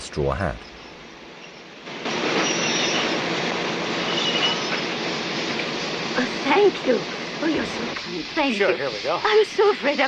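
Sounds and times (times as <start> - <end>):
train rumbling: 0.0 - 10.0
speech: 0.2 - 0.7, 6.2 - 10.0
train wheel squeals: 0.8 - 3.2, 4.0 - 5.0.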